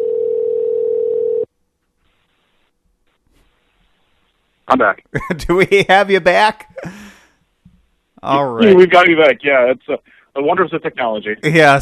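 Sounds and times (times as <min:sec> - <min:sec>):
outgoing phone call ringing tone: 0:00.0 - 0:01.5
speech: 0:04.7 - 0:07.0, 0:08.2 - 0:11.8.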